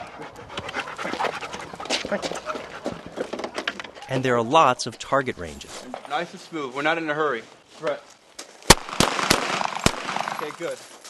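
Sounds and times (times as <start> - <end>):
working dog panting at a training kennel: 0.0 - 3.8
faint noise: 0.0 - 11.0
speech: 2.1 - 2.6, 4.1 - 8.1, 10.4 - 11.0.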